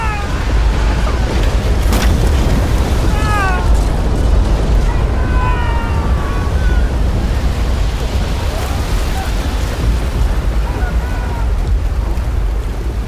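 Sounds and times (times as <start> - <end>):
water rushing in as ship sinks: 0.0 - 13.0.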